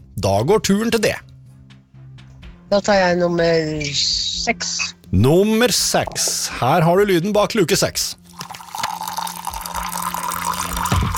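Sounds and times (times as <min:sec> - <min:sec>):
speech: 0:00.2 - 0:01.3, 0:02.7 - 0:08.2
tea pouring into a cup: 0:08.2 - 0:11.1.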